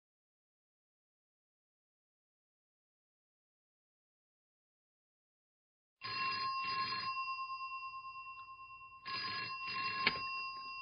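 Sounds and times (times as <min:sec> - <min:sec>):
telephone ringing with a classic double-burst bell: 0:06.0 - 0:10.8.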